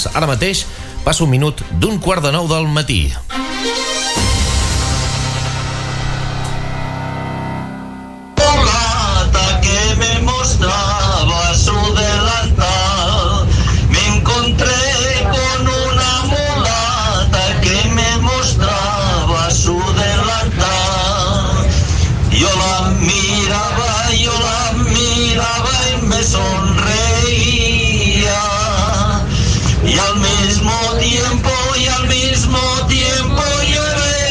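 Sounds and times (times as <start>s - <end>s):
speech: 0.0s - 3.8s
short musical passage: 3.2s - 9.8s
crowd of bus passengers singing and chanting together: 4.2s - 34.2s
steady low rumble of a moving bus: 8.4s - 34.1s.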